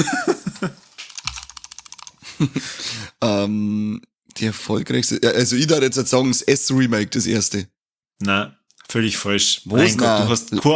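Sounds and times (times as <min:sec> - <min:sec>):
speech: 0:00.0 - 0:00.3, 0:02.4 - 0:10.7
crisp computer keyboard typing clicks: 0:00.9 - 0:02.1.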